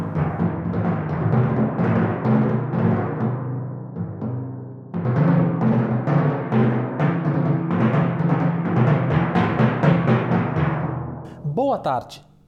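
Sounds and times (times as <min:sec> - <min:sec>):
energetic orchestral timpani drumming: 0:00.0 - 0:03.4, 0:05.0 - 0:11.6
speech: 0:11.7 - 0:12.3.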